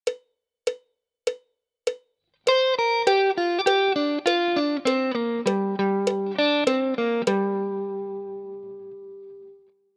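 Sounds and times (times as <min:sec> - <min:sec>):
G minor pentatonic connecting lick on guitar: 0:02.5 - 0:09.7.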